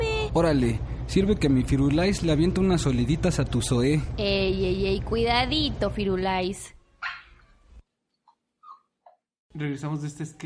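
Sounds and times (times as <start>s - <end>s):
speech: 0.4s - 6.8s, 9.5s - 10.4s
dog giving a loud, harsh bark: 7.0s - 7.5s.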